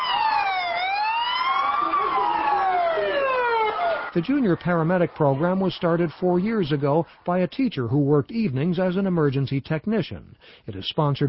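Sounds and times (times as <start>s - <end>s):
wailing sirens of police cars, a fire truck and ambulances arriving at an emergency: 0.0s - 4.2s
laughter: 1.6s - 8.0s
speech: 4.2s - 11.2s.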